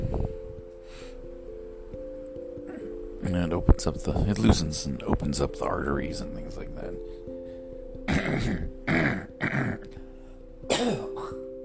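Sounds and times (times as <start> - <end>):
low steady hum: 0.0 - 11.6
speech: 3.2 - 7.3, 8.3 - 9.0
person coughing from mucus-loosening medication: 8.1 - 9.8, 10.7 - 11.6
throat clearing from mucus-loosening medication: 8.1 - 9.8, 10.7 - 11.6.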